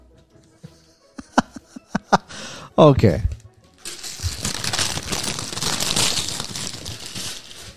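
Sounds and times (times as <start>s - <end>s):
laughter: 1.0s - 2.3s
speech: 2.8s - 3.3s
wrapping paper crinkling and tearing as a gift box is unwrapped: 3.8s - 7.7s.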